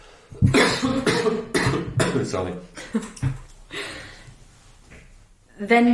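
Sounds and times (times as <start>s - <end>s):
person coughing: 0.4s - 2.5s
speech: 2.2s - 3.4s, 5.6s - 5.9s.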